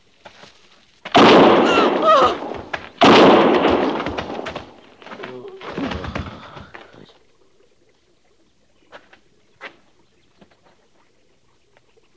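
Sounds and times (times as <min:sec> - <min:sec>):
loud sharp gunshots fired at a man: 0:01.1 - 0:05.0.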